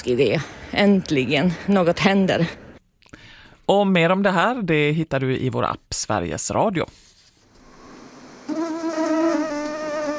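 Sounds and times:
speech: 0.0s - 2.6s, 3.7s - 7.1s
mosquito whine indoors: 8.4s - 10.1s.

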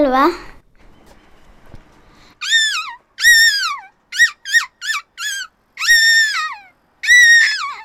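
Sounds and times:
speech: 0.1s - 0.5s
child imitating seagull cries: 2.4s - 7.8s.

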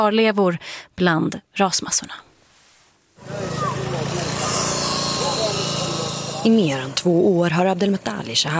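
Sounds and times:
speech: 0.0s - 2.3s, 6.4s - 8.5s
power saw cutting through steel rebar and iron bars in a collapsed bombed concrete building: 3.2s - 8.3s.

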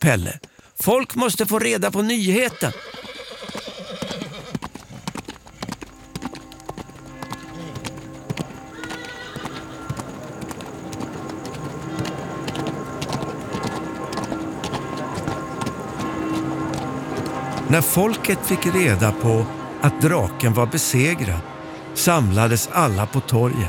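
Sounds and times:
speech: 0.0s - 3.1s, 17.7s - 23.6s
horse hooves clip-clopping in a steady brisk rhythm: 2.2s - 19.2s
short horse whinny: 2.4s - 4.6s, 8.7s - 9.9s
continuous murmur: 9.5s - 22.9s.

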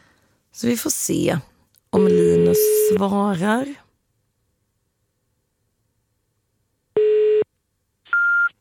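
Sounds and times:
speech: 0.6s - 3.8s
old-fashioned electronic telephone beep tones when placing a call: 2.0s - 3.0s, 8.1s - 8.5s.

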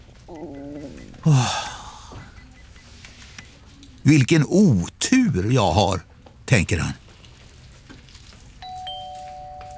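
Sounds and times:
speech: 0.3s - 1.6s, 4.0s - 7.0s
two-tone ding-dong chime: 8.6s - 9.7s.

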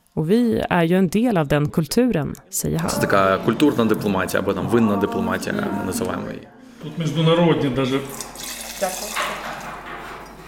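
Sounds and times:
speech: 0.2s - 9.1s
wine streaming from a steel tank tap into a glass: 8.0s - 9.2s.

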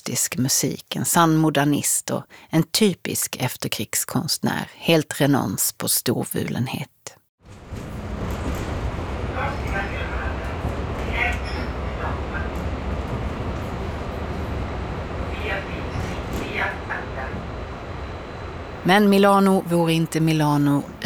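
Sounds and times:
speech: 0.0s - 7.0s, 18.8s - 21.0s
tram rolling through Milan Italy: 7.4s - 21.0s
tram high squeals: 8.5s - 21.0s
faint voices: 9.3s - 12.8s, 15.1s - 17.8s.

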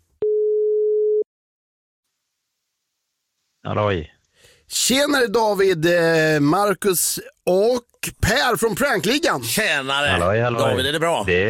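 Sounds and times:
steady low electronic telephone line tone: 0.2s - 1.3s
speech: 3.7s - 11.4s.

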